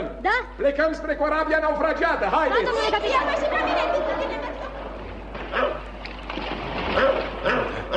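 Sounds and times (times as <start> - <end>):
steady busy noise: 0.0 - 7.9
speech: 0.3 - 4.5
laughter: 2.6 - 5.4
dog barking angrily: 5.5 - 5.9, 6.9 - 7.9.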